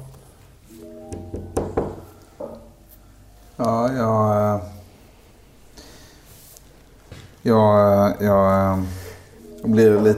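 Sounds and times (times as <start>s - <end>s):
faint steady hum: 0.0s - 10.1s
firm knocks on a door at a veterinarian's: 1.2s - 2.1s
speech: 3.6s - 4.7s, 7.4s - 9.0s, 9.6s - 10.1s.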